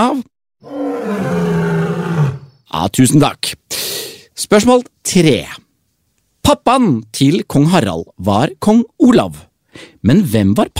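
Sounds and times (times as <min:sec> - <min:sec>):
speech: 0:00.0 - 0:00.8, 0:02.8 - 0:03.6, 0:04.4 - 0:05.6, 0:06.5 - 0:10.7
lion roaring: 0:00.6 - 0:02.6.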